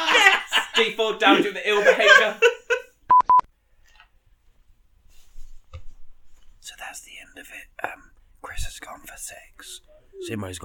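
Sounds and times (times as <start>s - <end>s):
laughter: 0.0s - 2.9s
speech: 0.8s - 2.5s, 7.4s - 10.6s
mobile phone alert beeps: 3.1s - 3.5s.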